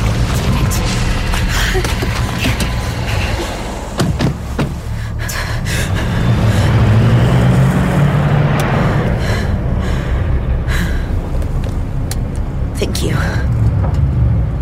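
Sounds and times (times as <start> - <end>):
car engine rumbling: 0.0 - 14.6.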